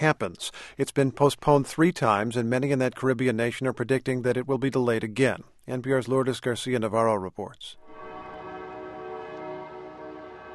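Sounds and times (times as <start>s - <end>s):
speech: 0.0s - 8.1s
church bells tolling at main cathedral: 7.8s - 10.5s.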